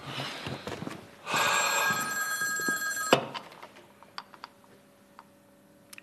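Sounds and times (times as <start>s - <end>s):
telephone bell ringing: 1.3s - 3.6s.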